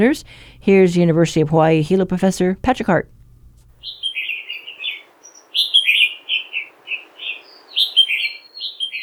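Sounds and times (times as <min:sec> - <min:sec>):
speech: 0:00.0 - 0:03.2, 0:03.8 - 0:04.0
red-whiskered bulbul singing: 0:03.8 - 0:09.0.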